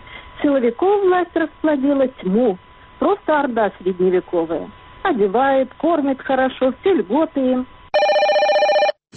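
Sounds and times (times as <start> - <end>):
speech: 0.4 - 7.8
bright telephone ring: 8.0 - 9.0.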